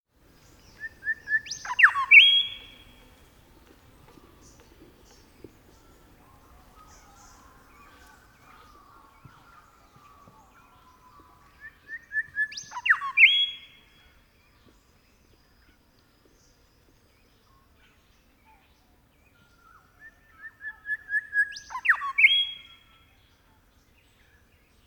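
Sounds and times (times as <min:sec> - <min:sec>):
Grey Shrikethrush Colluricincla harmonica call: 0:00.7 - 0:03.1, 0:05.8 - 0:13.9, 0:19.8 - 0:23.0.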